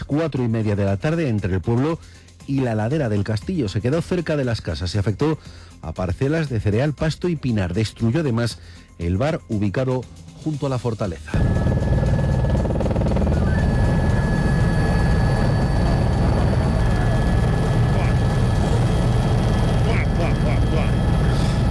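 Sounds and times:
speech: 0:00.1 - 0:11.6
firefighting helicopter rotor and engine roar: 0:11.3 - 0:21.6.

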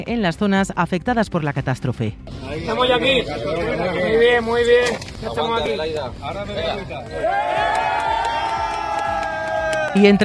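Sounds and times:
speech: 0:00.0 - 0:08.0, 0:10.0 - 0:10.2
Spanish military emergency rescue workers cheering after pulling survivors from rubble: 0:06.6 - 0:10.2
excited shouts and a rising whoop: 0:07.1 - 0:10.2.

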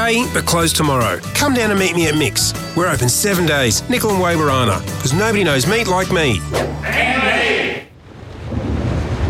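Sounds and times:
speech: 0:00.1 - 0:07.3
high harsh cry: 0:06.8 - 0:07.9
deep rolling thunder rumble: 0:08.0 - 0:09.2.

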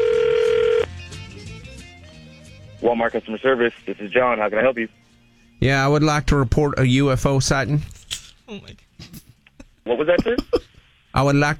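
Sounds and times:
ringback tone on an outgoing telephone call: 0:00.0 - 0:00.9
speech: 0:02.8 - 0:05.0, 0:05.6 - 0:09.2, 0:09.8 - 0:11.5.

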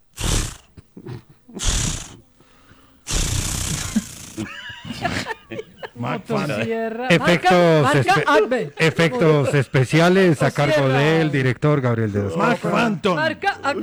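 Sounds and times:
person vocally mimicking a chainsaw start attempt: 0:00.2 - 0:00.7, 0:01.6 - 0:02.2, 0:03.1 - 0:05.2
laughter: 0:03.2 - 0:11.5
speech: 0:06.1 - 0:13.8.

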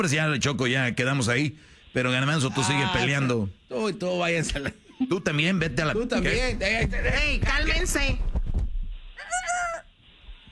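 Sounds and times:
speech: 0:00.0 - 0:08.3
rooster crowing: 0:09.2 - 0:09.9.

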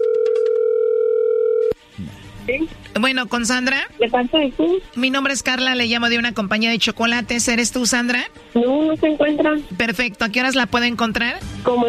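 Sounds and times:
telephone dial tone while dialing a call: 0:00.0 - 0:01.8
speech: 0:02.0 - 0:11.8.

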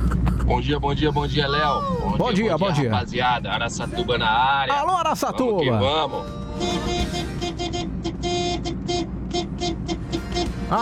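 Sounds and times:
busy traffic rumble: 0:00.0 - 0:10.7
speech: 0:00.5 - 0:06.8
several car horns honking: 0:05.8 - 0:10.7.

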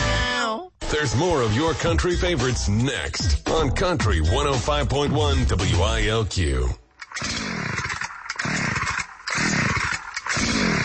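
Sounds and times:
speech: 0:00.9 - 0:07.5
chainsaw engine sputtering and failing to start: 0:07.0 - 0:10.8.

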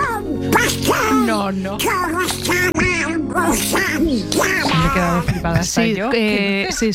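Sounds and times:
raspy squawking cartoon duck voice chattering in quacking bursts: 0:00.5 - 0:05.2
speech: 0:00.7 - 0:02.7, 0:03.3 - 0:06.9.

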